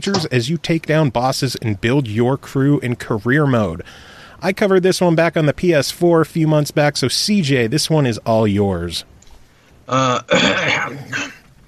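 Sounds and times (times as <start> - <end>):
speech: 0.0 - 9.1, 9.9 - 11.3
person clearing throat: 9.9 - 11.5.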